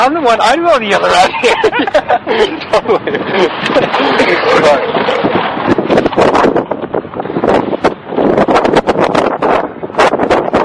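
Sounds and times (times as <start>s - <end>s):
speech: 0.0s - 6.4s
strong outdoor wind buffeting the microphone in Canada: 0.0s - 10.6s
laughter: 0.8s - 5.4s.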